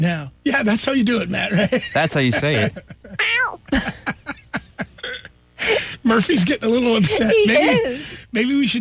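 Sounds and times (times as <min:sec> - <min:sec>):
speech: 0:00.0 - 0:04.0, 0:06.1 - 0:08.8
person imitating a cat meow: 0:03.2 - 0:03.6.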